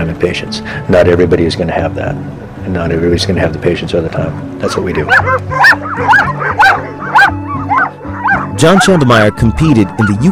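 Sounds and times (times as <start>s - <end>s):
speech: 0.1s - 6.2s, 8.6s - 10.2s
rehabilitated sled dogs barking and yipping: 4.6s - 10.2s.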